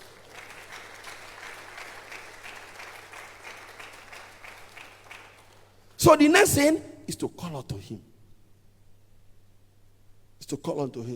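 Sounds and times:
congregation applauding: 0.0s - 6.0s
speech: 6.0s - 8.1s, 10.5s - 11.1s.

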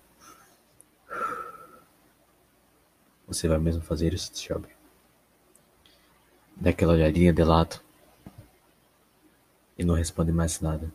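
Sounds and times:
voice imitating a sharp inhaled drag on a cigarette: 1.1s - 1.9s
speech: 3.3s - 4.8s, 6.6s - 7.8s, 9.8s - 10.9s.

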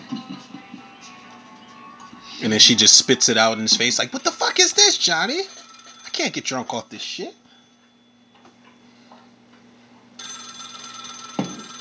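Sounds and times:
speech: 2.4s - 5.6s, 6.2s - 7.4s
landline telephone bell ringing: 2.5s - 8.6s, 10.2s - 11.8s.

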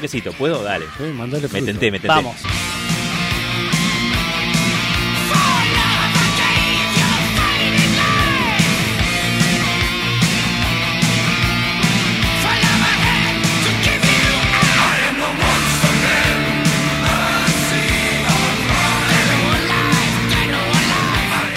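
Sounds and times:
speech: 0.0s - 2.7s
loud dense rock music: 0.0s - 21.5s
chorus of voices singing in German: 5.2s - 8.9s, 12.4s - 21.5s.

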